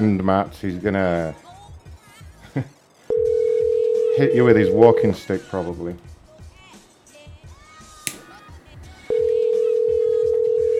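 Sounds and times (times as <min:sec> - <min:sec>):
speech: 0:00.0 - 0:01.4, 0:02.6 - 0:02.8, 0:04.2 - 0:06.1
telephone ringback tone of an outgoing call: 0:03.1 - 0:05.2, 0:09.0 - 0:10.7
brief click: 0:08.1 - 0:08.5.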